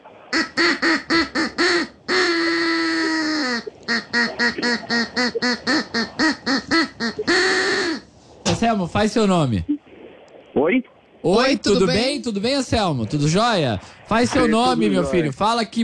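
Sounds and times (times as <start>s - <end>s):
duck quacking in a bouncy rhythm like a tune: 0.3s - 8.1s
speech: 9.0s - 9.7s, 10.7s - 15.8s.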